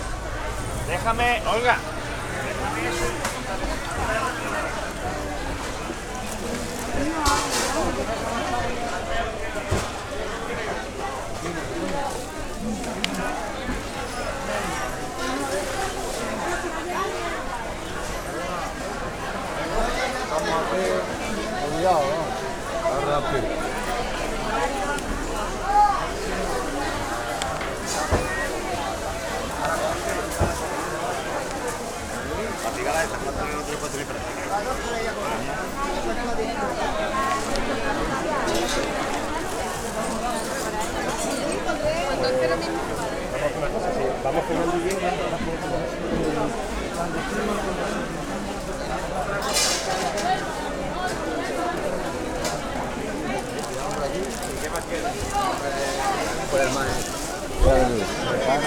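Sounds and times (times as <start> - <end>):
town market ambience: 0.0 - 58.6.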